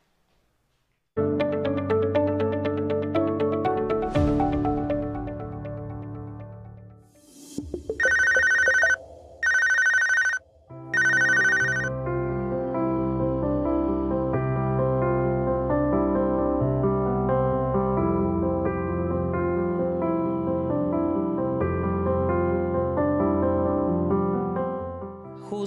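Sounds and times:
music: 1.2s - 25.6s
telephone ringing in electronic bursts: 7.9s - 11.9s.

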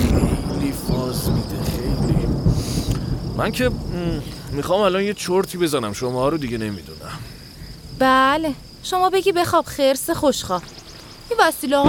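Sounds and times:
low rolling thunder rumbling: 0.0s - 9.5s
constant hiss of rain: 0.0s - 11.8s
faint high insect drone: 0.0s - 11.8s
speech: 3.4s - 7.3s, 8.0s - 11.8s.

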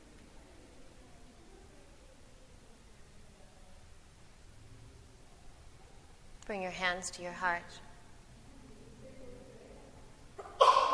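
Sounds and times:
speech: 6.5s - 7.9s
person sneezing: 10.4s - 10.9s.

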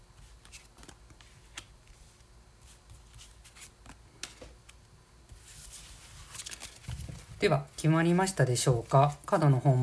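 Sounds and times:
tarot cards rustling: 0.2s - 7.4s
speech: 7.4s - 9.8s.

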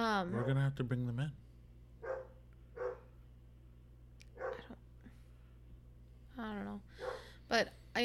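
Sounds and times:
low constant hum: 0.0s - 8.0s
speech: 0.2s - 1.5s, 6.4s - 8.0s
sharp dog barks at night: 0.3s - 0.6s, 2.0s - 3.1s, 4.4s - 4.7s.

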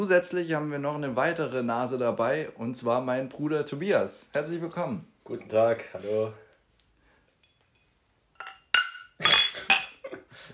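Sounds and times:
speech: 0.0s - 6.4s
beer glasses clinking in a group toast: 7.4s - 10.0s.

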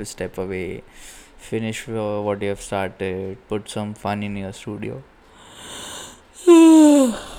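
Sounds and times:
speech: 0.0s - 5.9s, 6.5s - 7.3s
yawn: 5.5s - 7.3s.

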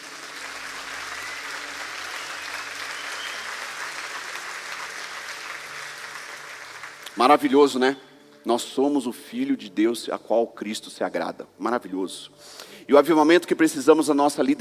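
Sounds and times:
audience applause: 0.0s - 7.5s
speech: 7.2s - 14.5s.

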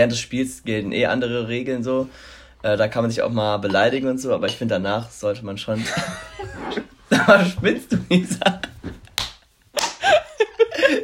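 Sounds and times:
speech: 0.0s - 8.8s
sharp slap in the face: 8.9s - 10.0s
laughter: 10.0s - 11.0s.

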